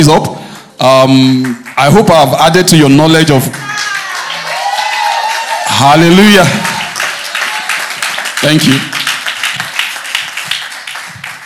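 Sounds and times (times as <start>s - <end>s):
speech: 0.0s - 3.9s, 5.8s - 6.7s, 8.4s - 9.0s
audience applauding a speaker after his talk: 3.4s - 11.4s.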